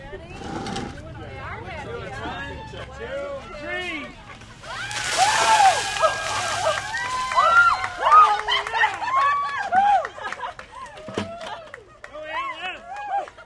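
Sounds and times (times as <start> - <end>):
people laughing: 4.0 - 12.5
slushy ice water dumped from buckets splashing on a sidewalk: 4.4 - 8.8
people shrieking: 4.6 - 9.5.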